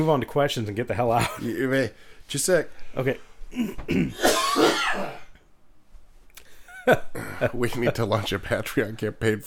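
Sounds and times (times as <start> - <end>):
speech: 0.0 - 5.2, 6.9 - 9.4
forceful harsh throat clearing: 3.5 - 5.4.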